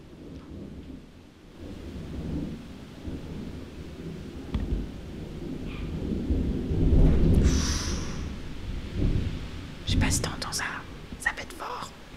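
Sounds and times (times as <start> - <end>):
deep thunder rumbling: 0.0 - 12.1
steady rain: 0.0 - 12.1
sharp thunder crack: 1.6 - 10.7.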